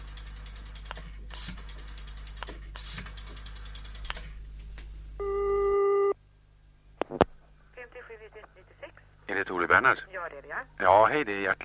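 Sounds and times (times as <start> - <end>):
mechanical clicks and rattles: 0.0 - 4.4
telephone ringing tone of an outgoing call: 5.2 - 6.2
speech: 9.4 - 11.6.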